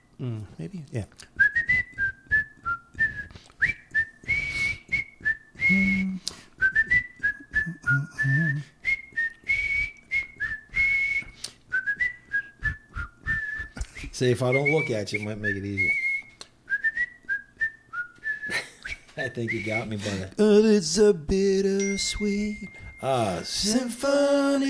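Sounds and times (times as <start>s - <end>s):
speech: 0.2s - 1.4s, 5.7s - 6.1s, 14.2s - 16.0s, 19.2s - 24.6s
person whistling a song melody: 1.4s - 20.3s, 21.8s - 23.8s.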